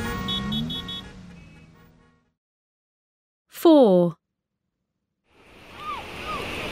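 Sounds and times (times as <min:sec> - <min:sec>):
busy road traffic rumbling: 0:00.0 - 0:02.4
car horn beeping: 0:00.0 - 0:02.4
speech: 0:03.6 - 0:04.2
ocean waves washing onto a beach: 0:05.3 - 0:06.6.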